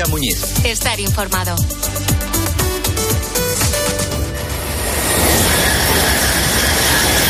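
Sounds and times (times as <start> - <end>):
speech: 0.0 - 3.4
high-speed train roar of rushing wind and rolling metal: 3.0 - 7.2
high-speed train wheels clacking on rails: 4.6 - 7.2.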